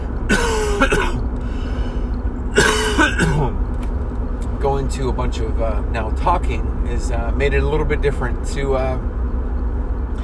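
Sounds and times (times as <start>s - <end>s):
steady low hum: 0.0s - 10.2s
person coughing: 0.3s - 1.2s, 2.6s - 3.6s
speech: 4.8s - 9.2s.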